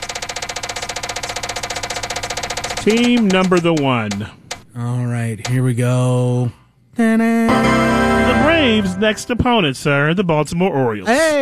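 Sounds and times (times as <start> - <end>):
prize wheel of baseball teams spinning with pointer clicking: 0.0 - 4.6
speech: 2.8 - 11.4.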